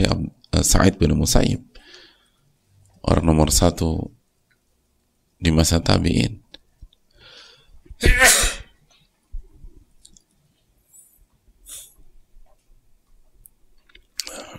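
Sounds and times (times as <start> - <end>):
speech: 0.0 - 1.8, 3.0 - 4.2, 5.4 - 6.5, 8.0 - 8.4
loud nasal burst from a person with the flu: 8.0 - 8.7
faint snuffles: 10.9 - 12.0.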